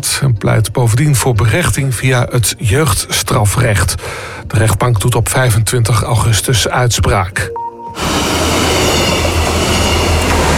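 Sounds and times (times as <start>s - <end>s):
speech: 0.0s - 8.2s
train rumbling across a railway bridge: 8.0s - 10.5s.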